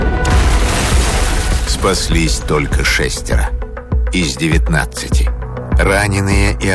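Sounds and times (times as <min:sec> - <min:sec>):
hydrogen explosion boom: 0:00.2 - 0:03.6
speech: 0:01.8 - 0:06.7.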